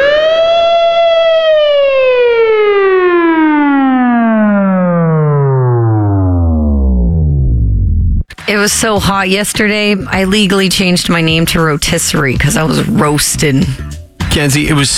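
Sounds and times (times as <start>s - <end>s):
police siren tone sagging lower in pitch: 0.0s - 8.1s
speech: 8.6s - 14.9s.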